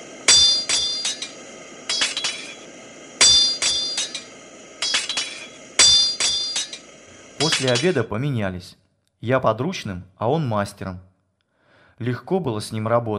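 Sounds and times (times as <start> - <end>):
smiths' hammers striking metal on an anvil forging horseshoes: 0.0 - 8.0
speech: 7.6 - 11.1, 12.0 - 13.1.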